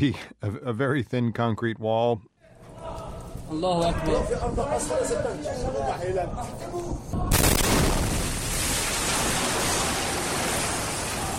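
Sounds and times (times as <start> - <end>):
speech: 0.0 - 2.3, 3.5 - 7.6
bomb explosion in residential neighborhood: 7.3 - 11.3
sustained rushing roar of rumble and falling debris: 7.3 - 11.3.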